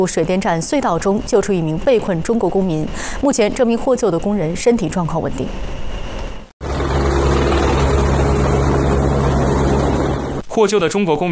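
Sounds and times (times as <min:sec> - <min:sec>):
speech: 0:00.0 - 0:05.9, 0:10.6 - 0:11.3
helicopter transferring a rescued worker to a hospital in Nepal: 0:05.6 - 0:10.4.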